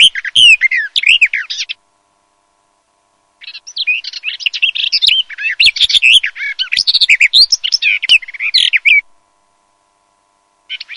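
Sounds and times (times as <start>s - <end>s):
garden warbler song: 0.0s - 2.2s, 3.3s - 9.2s, 10.6s - 10.9s.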